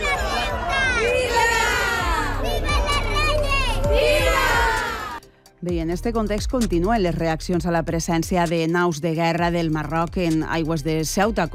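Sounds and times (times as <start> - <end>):
large outdoor crowd cheering and shouting outside a school: 0.0 - 5.2
speech: 5.6 - 11.5.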